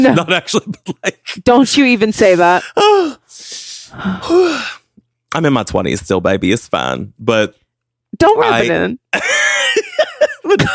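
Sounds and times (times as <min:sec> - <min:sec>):
speech: 0:00.0 - 0:07.6, 0:08.2 - 0:09.4, 0:10.4 - 0:10.7
harsh raspy coughing: 0:09.3 - 0:10.7.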